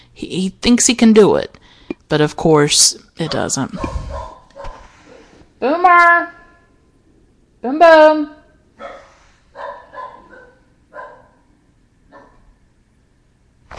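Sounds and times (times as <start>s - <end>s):
steady low hum: 0.0s - 13.7s
speech: 0.2s - 4.2s, 5.6s - 6.4s, 7.6s - 9.0s
dog barking: 3.3s - 5.3s, 8.8s - 11.5s, 12.1s - 12.6s.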